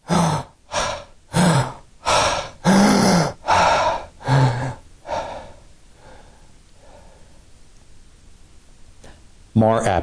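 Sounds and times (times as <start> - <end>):
person imitating a patient's catch-up gasping breaths after apnea: 0.0 - 7.4.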